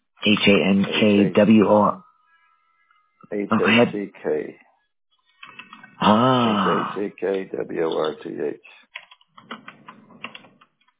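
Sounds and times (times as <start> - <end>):
speech: 0.2 - 2.0, 3.3 - 4.7, 6.0 - 8.8
typing on a computer keyboard: 8.9 - 10.9.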